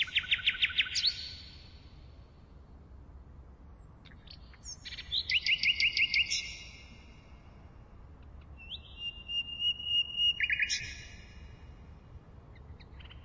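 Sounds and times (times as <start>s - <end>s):
common nightingale song: 0.0s - 2.1s, 3.6s - 7.4s, 8.4s - 11.8s, 12.4s - 13.2s.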